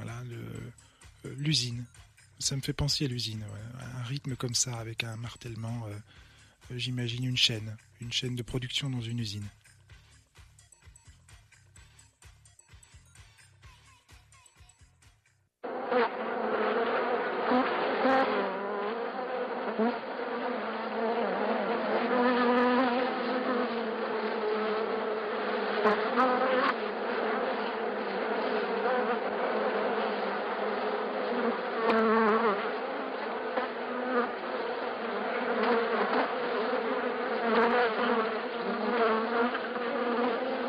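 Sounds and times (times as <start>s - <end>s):
speech: 1.4s - 9.6s
dense swarm of bees buzzing: 15.6s - 40.6s.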